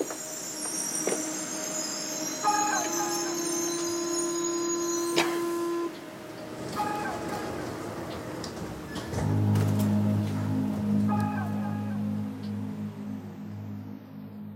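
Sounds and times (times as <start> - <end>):
metro train electronic door chimes beeping: 0.0 - 6.1
metro train sustained warning tone humming: 0.0 - 6.7, 8.9 - 14.5
metro train idling rumble: 0.2 - 14.5.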